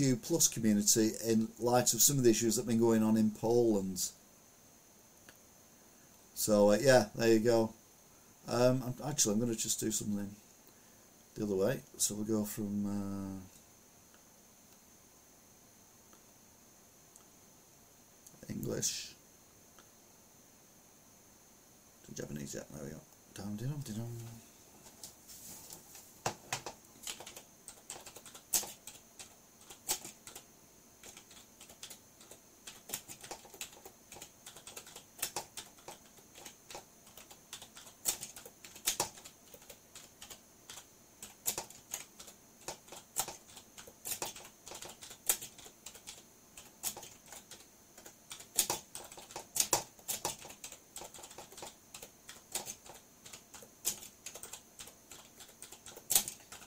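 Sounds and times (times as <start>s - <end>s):
speech: 0.0s - 4.2s, 6.4s - 7.8s, 8.4s - 10.4s, 11.4s - 13.6s, 18.5s - 19.2s, 22.1s - 24.5s
clacking of keys on a computer keyboard: 26.3s - 56.6s.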